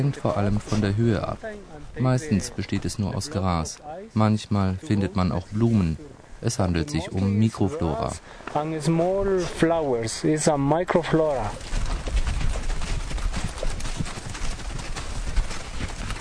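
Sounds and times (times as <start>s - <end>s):
donkey hooves clip-clopping along a rough path: 0.0s - 4.1s, 6.9s - 16.2s
speech: 0.0s - 11.8s
cold wind: 0.0s - 16.2s.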